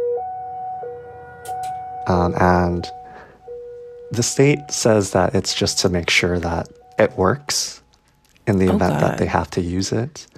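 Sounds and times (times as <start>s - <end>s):
Cold War era civil defense siren in Hawaii blaring during monthly test: 0.0s - 4.1s
speech: 2.0s - 3.0s, 4.1s - 7.8s, 8.5s - 10.3s.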